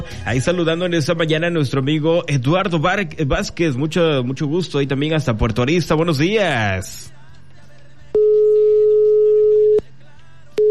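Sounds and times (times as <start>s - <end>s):
speech: 0.2s - 7.2s
phone line tone after a dropped call: 8.2s - 9.8s.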